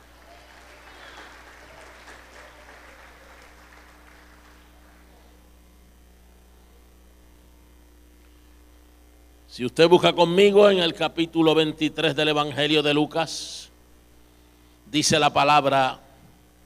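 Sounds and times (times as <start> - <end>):
congregation applauding during a sermon: 0.0 - 5.2
steady electrical hum: 0.0 - 16.6
speech: 9.5 - 13.7, 14.9 - 16.0.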